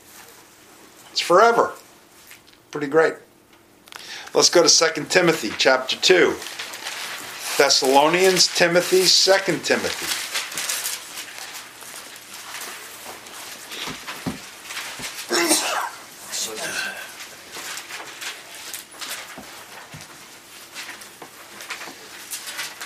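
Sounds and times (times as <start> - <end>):
speech: 1.2 - 1.8, 2.7 - 3.3, 4.3 - 6.6, 7.6 - 10.2
rustles: 6.4 - 15.4, 17.1 - 22.8
sneeze: 15.3 - 17.0.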